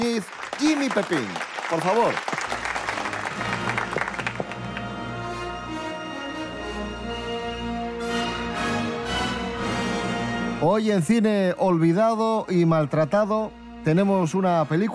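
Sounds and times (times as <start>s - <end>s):
loud crowd applause: 0.0s - 5.1s
sustained musical backing: 0.0s - 14.9s
speech: 0.2s - 2.4s, 10.6s - 14.9s.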